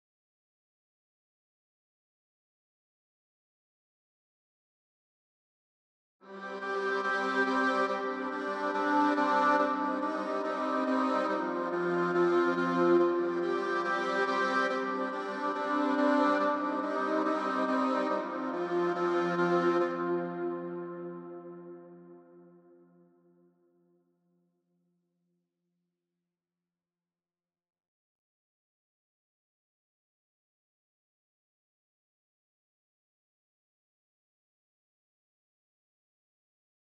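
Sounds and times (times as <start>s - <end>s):
strings playing in C minor: 6.3s - 22.0s.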